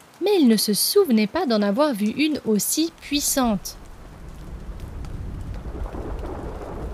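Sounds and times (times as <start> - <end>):
heavy rain pouring: 0.0 - 6.9
speech: 0.2 - 3.8
deep continuous thunder rumble: 2.9 - 6.9.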